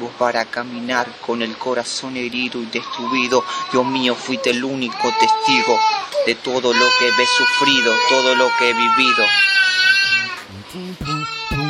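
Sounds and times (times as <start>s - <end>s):
speech: 0.1s - 10.0s
baby crying in a neighborhood in Villa 31: 2.8s - 11.6s.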